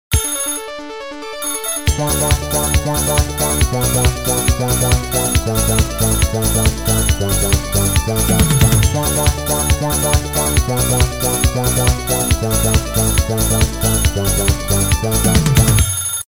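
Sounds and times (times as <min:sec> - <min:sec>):
Nokia mobile phone ringtone: 0:00.1 - 0:16.2.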